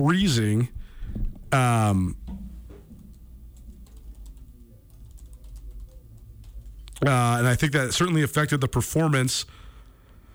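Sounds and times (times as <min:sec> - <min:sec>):
speech: 0:00.0 - 0:00.8, 0:01.5 - 0:02.2, 0:07.0 - 0:09.6
low hum: 0:00.0 - 0:10.3
fingers typing on a computer keyboard to pull up results: 0:03.0 - 0:06.8.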